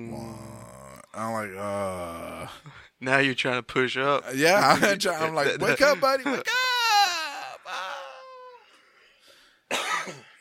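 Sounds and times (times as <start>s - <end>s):
speech: 1.2s - 6.7s
loud harsh cough: 9.7s - 10.3s
person clearing throat with strained voiced rasps: 9.7s - 10.3s.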